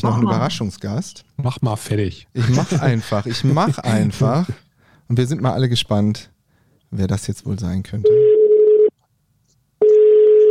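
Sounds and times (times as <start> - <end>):
speech: 0.0 - 6.3, 6.9 - 8.3
laughter: 2.4 - 4.3
outgoing phone call ringback tone: 8.1 - 8.9, 9.8 - 10.4.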